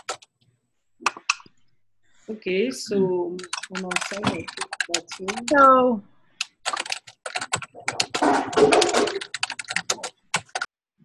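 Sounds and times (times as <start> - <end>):
loud computer keyboard typing during a video call: 0.0 - 0.3, 3.4 - 10.7
speech: 2.3 - 6.1, 8.6 - 8.9.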